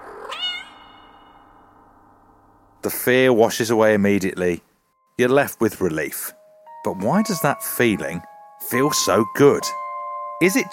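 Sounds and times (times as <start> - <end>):
house cat meowing: 0.2 - 1.4
speech: 2.8 - 9.8, 10.4 - 10.7.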